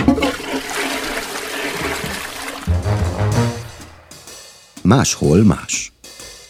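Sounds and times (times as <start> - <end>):
toilet flushing: 0.0 - 3.8
speech: 4.9 - 5.9.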